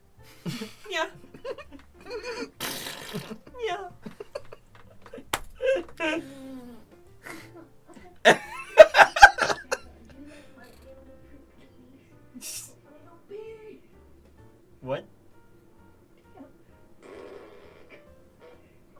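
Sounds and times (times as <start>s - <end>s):
people laughing: 0.4s - 2.5s, 4.0s - 6.6s, 7.2s - 10.2s
speech: 0.5s - 1.2s
buzzy squeaky farts: 2.4s - 3.6s, 16.9s - 18.9s.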